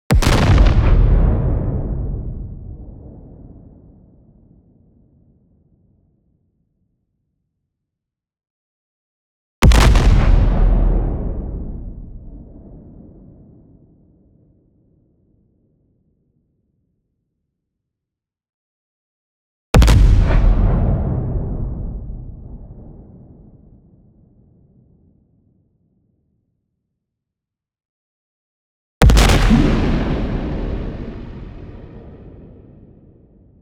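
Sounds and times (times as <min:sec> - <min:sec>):
long explosion with soft pitch-descending tail: 0:00.1 - 0:04.0, 0:09.6 - 0:13.6, 0:19.8 - 0:23.9, 0:29.0 - 0:33.6.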